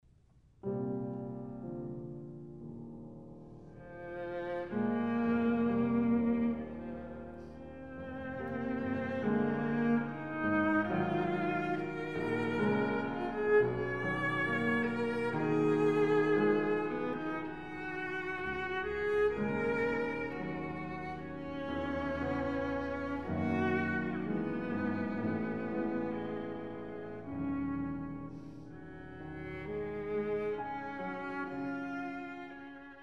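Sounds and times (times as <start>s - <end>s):
viola playing an elegy: 3.7s - 33.0s.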